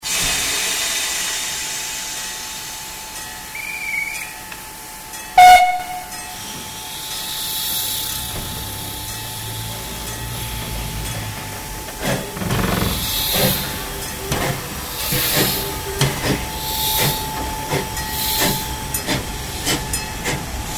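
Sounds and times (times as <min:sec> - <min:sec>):
steam locomotive departing: 0:00.0 - 0:20.7.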